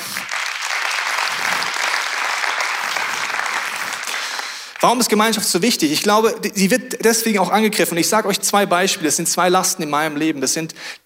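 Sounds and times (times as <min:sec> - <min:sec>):
room full of people applauding: 0:00.0 - 0:05.2
speech: 0:04.8 - 0:11.0.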